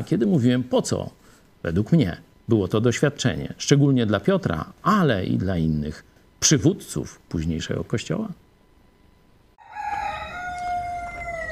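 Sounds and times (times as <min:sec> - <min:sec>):
speech: 0:00.0 - 0:08.4
rooster crowing: 0:09.6 - 0:11.4.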